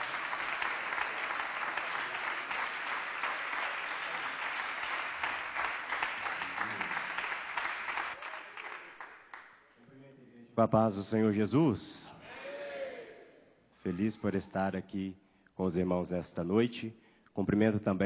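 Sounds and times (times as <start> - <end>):
audience applauding: 0.0 - 9.6
speech: 10.6 - 12.1, 13.8 - 18.0.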